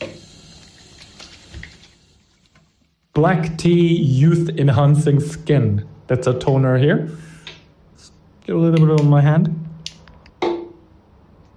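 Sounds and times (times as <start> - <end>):
warm water splashing on a face during washing: 0.6 - 2.0
steady low hiss: 2.2 - 11.5
speech: 3.2 - 7.3, 8.5 - 9.6.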